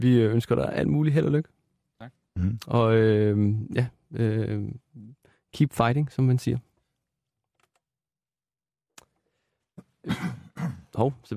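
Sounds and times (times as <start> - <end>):
speech: 0.0 - 6.7, 10.0 - 11.3
person coughing: 9.8 - 10.9.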